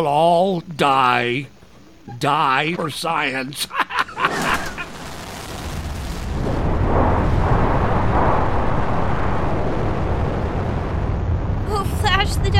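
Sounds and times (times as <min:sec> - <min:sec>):
speech: 0:00.0 - 0:03.8
laughter: 0:02.7 - 0:05.0
rocket ship launching from Earth: 0:04.1 - 0:12.5.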